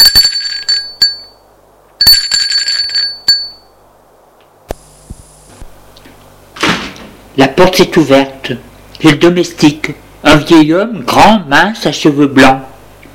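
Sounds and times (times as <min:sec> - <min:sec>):
doorbell ringing: 0:00.0 - 0:01.4, 0:02.0 - 0:03.7
speech: 0:07.6 - 0:12.7.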